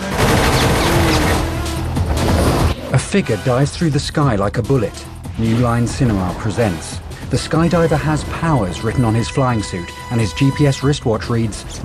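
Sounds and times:
helicopter machine guns firing: 0.0s - 2.7s
speech: 3.1s - 11.8s.

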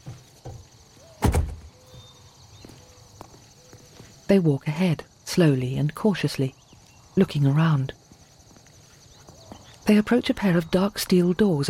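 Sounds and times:
car doors thudding as people climb out of a stopped car: 0.4s - 1.7s
speech: 4.3s - 6.6s, 7.2s - 8.0s, 9.9s - 11.6s.

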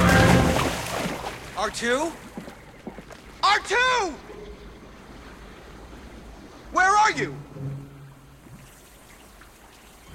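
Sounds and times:
loud splash of something heavy into a boggy lake: 0.0s - 1.8s
water sloshing in a boggy lake: 0.0s - 10.1s
speech: 1.6s - 2.3s, 3.5s - 4.3s, 6.7s - 7.7s.

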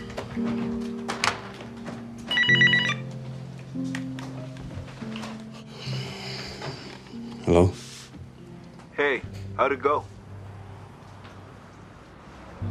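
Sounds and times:
soft sustained musical background: 0.0s - 12.7s
telephone ringing in a home kitchen: 2.3s - 3.1s
speech: 7.5s - 7.8s, 9.6s - 10.2s.

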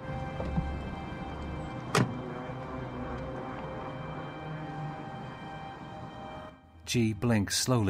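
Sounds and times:
outdoor ambience outside a hospital: 0.0s - 7.0s
car back door shutting with a solid thunk outside a hospital: 0.2s - 3.7s
car back door clicking open outside a hospital: 1.4s - 2.2s
speech: 6.9s - 7.8s.

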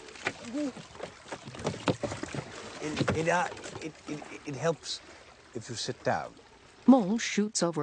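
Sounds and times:
water sloshing: 0.0s - 7.8s
small wooden rowing boat knocking and creaking: 0.2s - 3.9s
person making wordless vocal sounds: 0.5s - 0.8s
speech: 0.5s - 1.1s, 2.8s - 7.8s.

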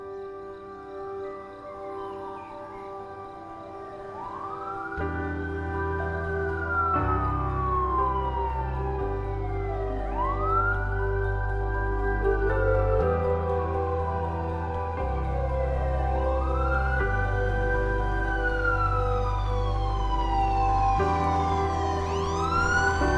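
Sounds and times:
police car siren wailing: 3.3s - 23.1s
low engine drone: 5.0s - 23.1s.

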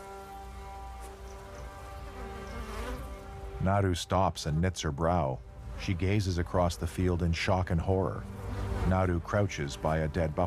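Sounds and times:
swarm of flies buzzing around carcasses: 0.0s - 3.6s, 8.2s - 9.3s
faint crackling patter: 0.0s - 10.4s
speech: 3.6s - 10.4s.

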